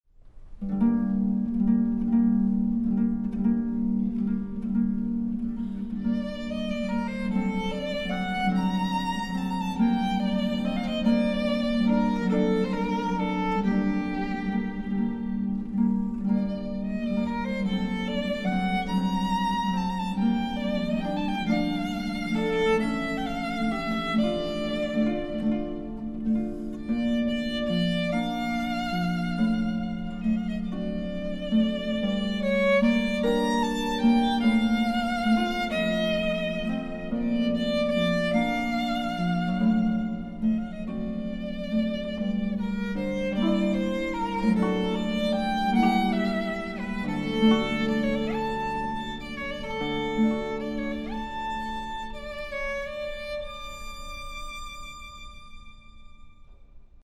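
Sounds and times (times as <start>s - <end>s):
harp: 0.2s - 57.0s
violin: 0.2s - 57.0s.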